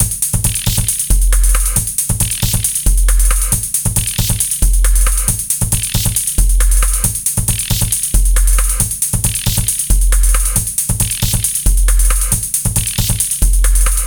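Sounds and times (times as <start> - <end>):
fast upbeat music: 0.0 - 14.0.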